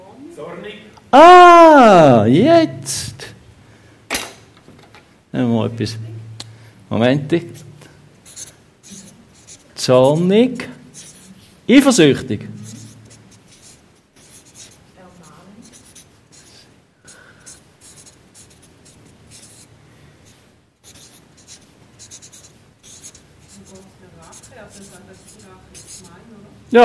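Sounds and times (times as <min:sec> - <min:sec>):
speech: 0:00.4 - 0:03.3, 0:05.3 - 0:06.1, 0:06.9 - 0:07.7, 0:09.8 - 0:10.7, 0:11.7 - 0:12.5
pen scratching on paper while writing words: 0:07.5 - 0:10.3, 0:10.9 - 0:11.5, 0:12.5 - 0:19.7, 0:20.3 - 0:26.3
quiet talking and whispering voices: 0:14.9 - 0:16.0, 0:23.0 - 0:26.8.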